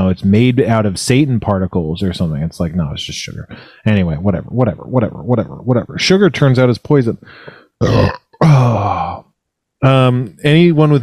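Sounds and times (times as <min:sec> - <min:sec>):
speech: 0:00.1 - 0:09.2, 0:09.8 - 0:11.0
short grunt-like sound: 0:07.8 - 0:09.2
longer deep drawn-out loud burp: 0:07.8 - 0:09.3.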